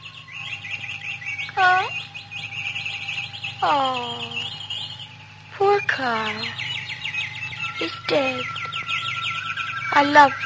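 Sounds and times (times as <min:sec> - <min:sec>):
caged birds chirping: 0:00.0 - 0:10.4
steady low hum: 0:00.0 - 0:10.4
speech: 0:03.6 - 0:04.4, 0:05.6 - 0:06.6, 0:07.8 - 0:08.5, 0:09.9 - 0:10.4.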